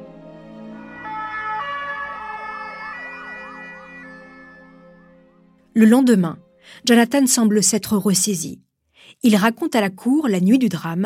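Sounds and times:
steady tonal drone: 0.0 - 5.6
ambulance siren wailing: 0.3 - 5.6
speech: 5.8 - 11.0.

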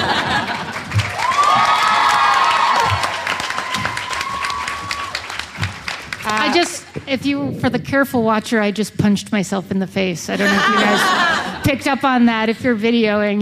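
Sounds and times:
laughter: 0.0 - 1.1, 10.4 - 11.6
small crowd clapping sparsely: 0.0 - 7.1
people whooping: 1.0 - 5.4
high cheering voice: 1.1 - 5.4, 10.4 - 11.6
speech: 7.1 - 13.4.

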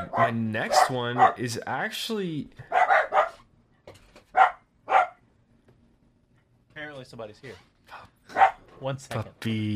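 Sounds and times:
dog barking: 0.0 - 1.4, 2.7 - 3.4, 4.3 - 5.2, 8.3 - 8.6
speech: 0.3 - 2.8, 7.0 - 9.7.

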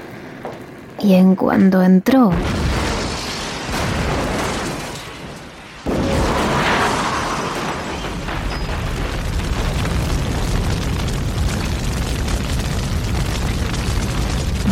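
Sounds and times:
speech: 1.0 - 2.6
explosion: 2.3 - 14.6.

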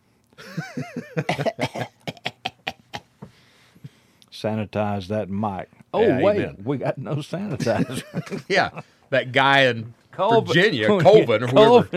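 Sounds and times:
harsh hacking coughing fit: 0.4 - 3.1
speech: 0.6 - 1.9, 4.4 - 11.9
laughter: 7.5 - 8.9.

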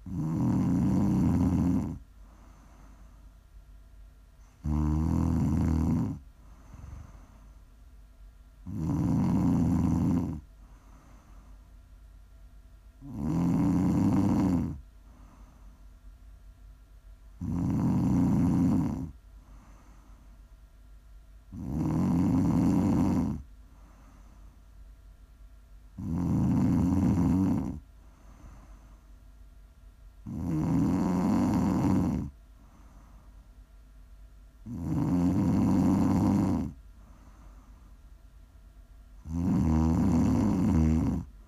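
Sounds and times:
person snoring: 0.0 - 3.0, 4.5 - 7.4, 8.6 - 11.2, 13.0 - 15.5, 17.4 - 20.0, 21.5 - 24.2, 26.0 - 28.8, 30.2 - 32.4, 34.6 - 37.5, 39.2 - 41.3
faint low hum: 0.0 - 41.4.

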